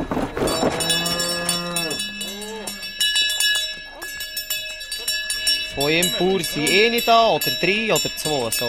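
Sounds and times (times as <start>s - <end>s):
cowbells clanging and jingling: 0.0s - 8.6s
cows mooing at an alpine hut: 0.4s - 3.0s
speech: 5.8s - 8.6s.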